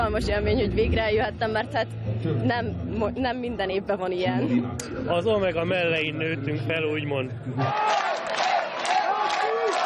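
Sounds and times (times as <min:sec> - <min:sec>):
speech: 0:00.0 - 0:08.1
huge crowd in a city square waiting for an open-air concert: 0:07.6 - 0:09.8.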